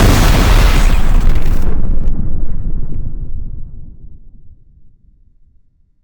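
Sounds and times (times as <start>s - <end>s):
huge explosion: 0.0s - 5.1s.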